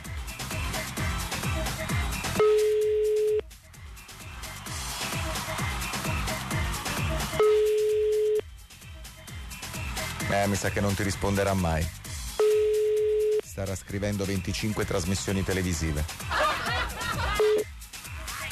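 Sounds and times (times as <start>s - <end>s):
rhythmic music: 0.0s - 18.4s
phone ringback tone: 2.4s - 3.4s, 7.4s - 8.4s, 12.4s - 13.5s
speech: 10.4s - 12.0s, 13.6s - 16.4s
laughter: 15.5s - 17.6s.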